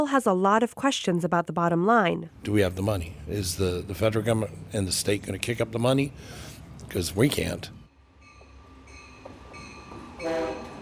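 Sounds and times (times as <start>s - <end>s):
speech: 0.0s - 7.8s
passenger train arriving at station: 2.3s - 10.7s.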